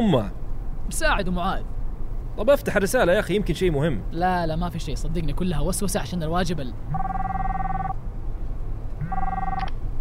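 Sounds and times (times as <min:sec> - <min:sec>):
speech: 0:00.0 - 0:01.8, 0:02.4 - 0:07.2
mobile phone ringing: 0:06.9 - 0:08.0, 0:09.0 - 0:09.7.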